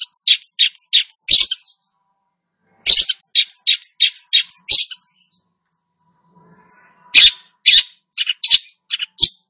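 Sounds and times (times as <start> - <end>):
long-tailed shrike chattering song: 0.0 - 1.8, 2.9 - 5.4, 6.7 - 9.4.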